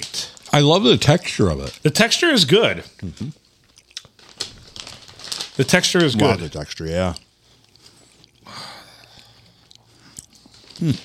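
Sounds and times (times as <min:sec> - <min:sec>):
speech: 0:00.6 - 0:03.4, 0:05.6 - 0:07.2, 0:10.8 - 0:11.0
chewing a moist meatball topped with sesame seeds: 0:02.8 - 0:05.4, 0:06.1 - 0:11.0.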